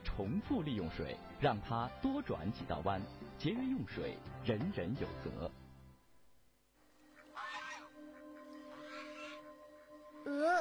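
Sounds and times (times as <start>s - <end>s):
speech: 0.2s - 5.6s
goose honking: 7.1s - 9.5s.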